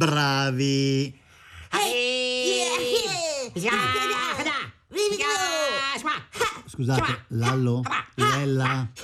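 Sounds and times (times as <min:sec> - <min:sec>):
speech: 0:00.0 - 0:02.2, 0:03.6 - 0:04.2, 0:06.8 - 0:09.0
voices imitating martial arts fighting into a microphone: 0:01.8 - 0:09.0.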